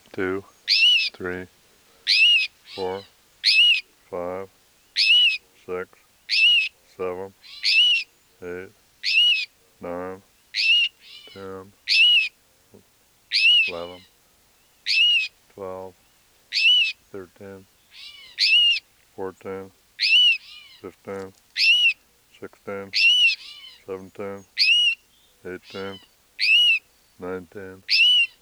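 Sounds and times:
female rufous-sided towhee giving cries and alarm notes near its nest: 0:00.0 - 0:28.4
speech: 0:00.2 - 0:02.2, 0:02.8 - 0:05.1, 0:05.7 - 0:07.6, 0:08.4 - 0:09.2, 0:09.8 - 0:10.7, 0:11.4 - 0:12.0, 0:13.3 - 0:14.1, 0:15.6 - 0:17.7, 0:19.2 - 0:20.2, 0:20.8 - 0:21.4, 0:22.4 - 0:23.1, 0:23.9 - 0:24.7, 0:25.4 - 0:26.6, 0:27.2 - 0:28.0.

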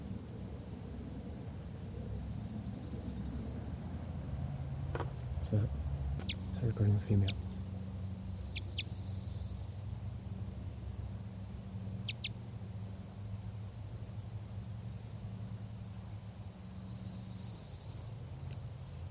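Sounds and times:
steady low rumble: 0:00.0 - 0:19.0
speech: 0:05.5 - 0:05.8, 0:06.6 - 0:07.4
female bird giving flight calls while foraging on lodgepole pine shoots: 0:06.2 - 0:09.8, 0:12.0 - 0:12.4.

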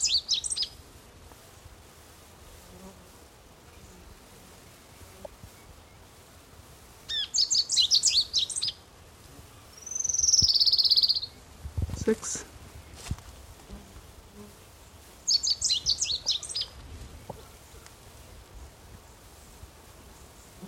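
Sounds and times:
sparrow singing: 0:00.0 - 0:00.8, 0:07.1 - 0:08.8, 0:09.7 - 0:11.4, 0:15.3 - 0:16.8
faint steady outdoor background: 0:00.0 - 0:20.6.

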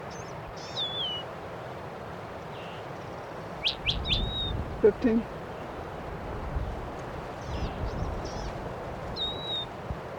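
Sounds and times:
steady low noise: 0:00.0 - 0:10.1
goldfinches calling: 0:00.1 - 0:01.2, 0:02.6 - 0:04.6, 0:07.4 - 0:08.6, 0:09.2 - 0:09.7
speech: 0:04.8 - 0:05.4.

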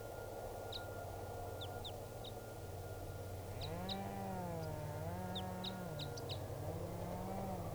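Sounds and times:
steady low hum: 0:00.1 - 0:07.7
wild Red Crossbill type 2 chip calls from top of tall tree: 0:03.4 - 0:07.7.

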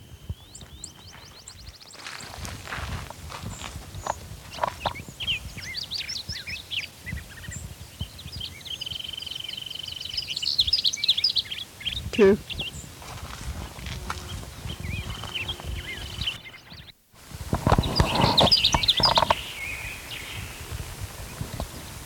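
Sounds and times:
bird chirping: 0:00.0 - 0:02.8, 0:03.4 - 0:12.9, 0:14.2 - 0:17.0, 0:17.6 - 0:21.7
speech: 0:12.2 - 0:12.5.

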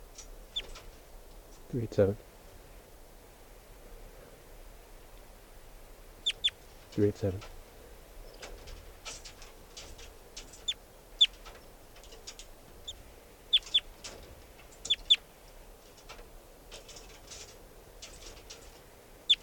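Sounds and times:
speech: 0:01.7 - 0:02.3, 0:07.0 - 0:07.6
wild bird chittering: 0:06.2 - 0:06.6, 0:10.5 - 0:11.4, 0:12.2 - 0:13.9, 0:14.8 - 0:15.2.

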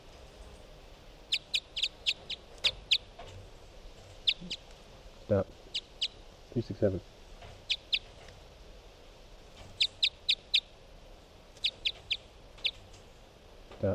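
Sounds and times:
low hiss: 0:00.0 - 0:13.9
short high sharp bird chirps: 0:01.3 - 0:03.2, 0:04.1 - 0:04.7, 0:05.7 - 0:06.2, 0:07.6 - 0:08.2, 0:09.6 - 0:10.8, 0:11.6 - 0:13.0
speech: 0:05.3 - 0:05.6, 0:06.6 - 0:07.1, 0:13.8 - 0:13.9.

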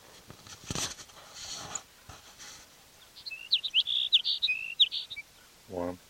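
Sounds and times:
sparrow chirping: 0:03.0 - 0:05.5.

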